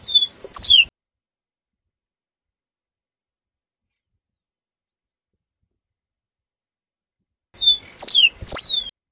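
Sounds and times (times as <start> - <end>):
white-breasted seedeater calling: 0.0 - 0.9, 7.6 - 8.9.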